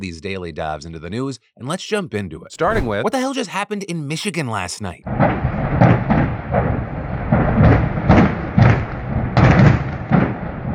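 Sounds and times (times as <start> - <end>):
speech: 0.0 - 5.5
gas tanks exploding at a burning building: 5.0 - 10.7.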